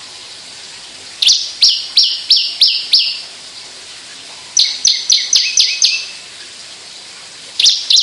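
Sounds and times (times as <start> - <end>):
Javan bush lark singing in song flight: 1.2 - 3.2, 4.6 - 6.2, 7.6 - 8.0.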